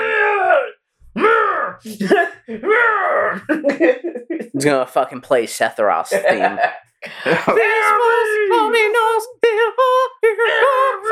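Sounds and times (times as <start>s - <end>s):
man screaming in imitation of a warrior's battle cry: 0.0s - 2.0s, 2.6s - 3.4s, 7.3s - 9.0s
speech: 1.8s - 11.1s
laughter: 1.9s - 4.7s, 6.1s - 8.7s, 10.4s - 11.1s.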